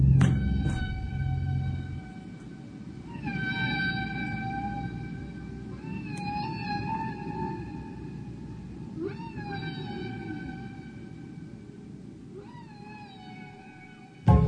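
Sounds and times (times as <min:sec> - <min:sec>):
low rumbling underwater wash: 0:00.0 - 0:03.1
whale tonal calls: 0:00.0 - 0:14.3.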